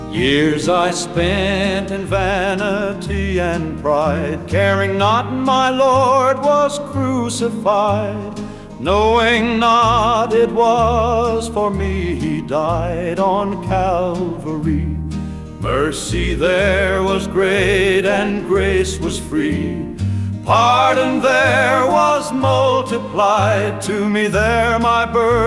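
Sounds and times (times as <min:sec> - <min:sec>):
male voice singing a gospel hymn: 0:00.1 - 0:15.0, 0:15.6 - 0:25.4.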